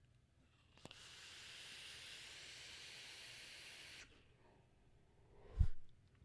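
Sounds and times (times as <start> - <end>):
airy hiss of someone drawing on a vape e-cigarette: 0.7 - 4.2.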